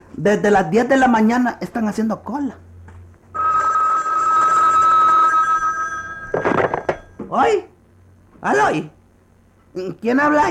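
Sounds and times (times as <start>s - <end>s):
speech: 0.2s - 2.6s, 7.4s - 7.7s, 8.4s - 9.0s, 9.8s - 10.4s
telephone bell ringing with a bright metallic trill: 3.4s - 7.2s.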